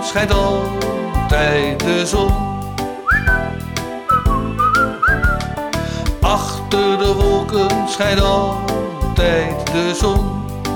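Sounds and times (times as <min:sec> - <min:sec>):
bouncy instrumental backing with steady rhythmic hits: 0:00.0 - 0:10.7
speech: 0:00.1 - 0:02.6, 0:06.3 - 0:10.4
person whistling a bright sliding tune: 0:03.0 - 0:05.6.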